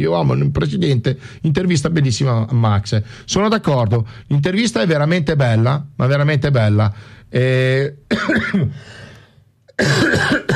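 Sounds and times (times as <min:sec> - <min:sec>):
speech: 0:00.0 - 0:09.0, 0:09.8 - 0:10.5
heavy coughing: 0:08.1 - 0:09.0, 0:09.7 - 0:10.5.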